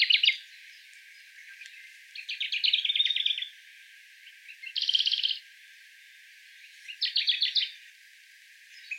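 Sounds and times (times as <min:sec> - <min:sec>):
Sakhalin leaf warbler singing rapid high trills on Tobishima: 0:00.0 - 0:03.6, 0:04.2 - 0:05.4, 0:06.0 - 0:08.0, 0:08.6 - 0:08.9
steady background hiss: 0:00.0 - 0:08.9.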